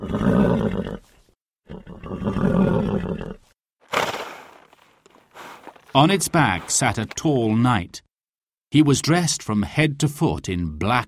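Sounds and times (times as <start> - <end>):
horse giving a sharp breathy snort: 1.7 - 6.8
speech: 6.0 - 8.1, 8.7 - 11.0.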